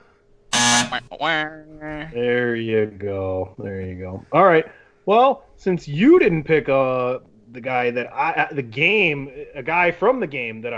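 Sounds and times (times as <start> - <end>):
loud harsh buzzer: 0.5 - 1.1
speech: 0.9 - 10.7.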